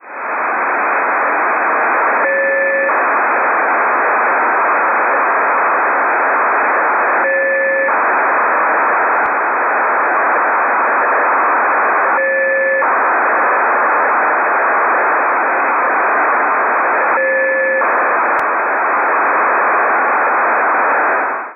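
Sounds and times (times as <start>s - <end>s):
satellite signal: 0.0s - 21.5s.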